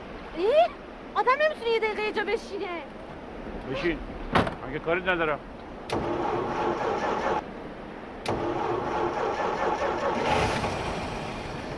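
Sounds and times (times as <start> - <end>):
speech: 0.4 - 3.0, 3.7 - 7.4
broken-down car's engine cranking without starting: 5.9 - 7.4, 8.2 - 11.7.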